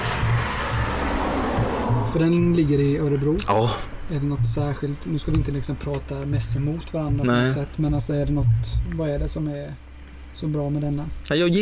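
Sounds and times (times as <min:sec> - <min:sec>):
car passing by on the road: 0:00.0 - 0:03.3
speech: 0:02.1 - 0:11.6.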